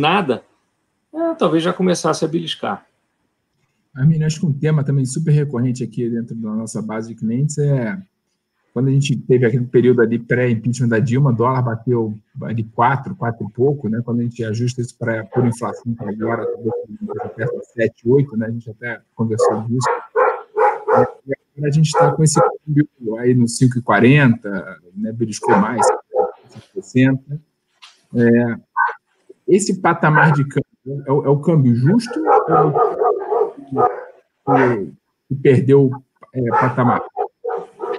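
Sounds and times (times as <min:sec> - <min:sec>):
speech: 0:00.0 - 0:00.5, 0:01.2 - 0:02.9, 0:04.0 - 0:08.1, 0:08.7 - 0:20.0, 0:21.0 - 0:27.5, 0:28.1 - 0:28.9, 0:29.5 - 0:32.9, 0:33.7 - 0:37.2
dogs barking: 0:15.2 - 0:17.6, 0:19.4 - 0:22.7, 0:25.4 - 0:26.6, 0:28.7 - 0:29.0, 0:30.0 - 0:30.6, 0:32.0 - 0:34.8, 0:36.4 - 0:37.9.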